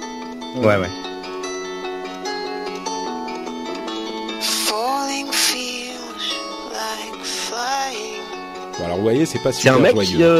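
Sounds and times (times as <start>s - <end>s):
steady musical backing: 0.0s - 10.3s
speech: 0.5s - 1.1s, 8.8s - 10.3s
man singing a melodic line: 4.4s - 8.2s.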